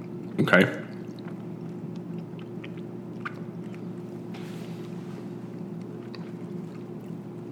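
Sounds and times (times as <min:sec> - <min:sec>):
two people chewing cheese: 0:00.0 - 0:07.5
speech: 0:00.4 - 0:00.9.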